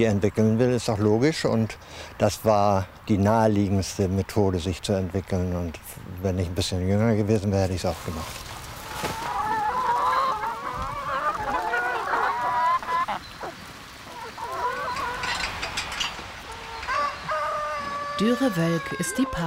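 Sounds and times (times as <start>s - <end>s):
speech: 0.0s - 9.2s, 18.2s - 19.4s
flock of chickens clucking and squawking on a farm: 5.0s - 19.4s.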